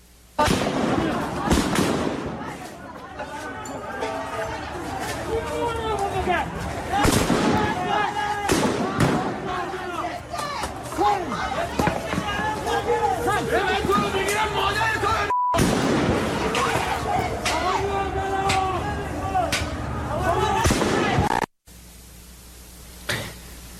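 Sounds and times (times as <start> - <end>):
gunshots from security forces shooting at protesters: 0.4 - 2.6, 7.0 - 9.6, 15.6 - 16.9, 20.6 - 21.5
crowd of protesters shouting and yelling: 0.8 - 15.3, 16.0 - 21.3.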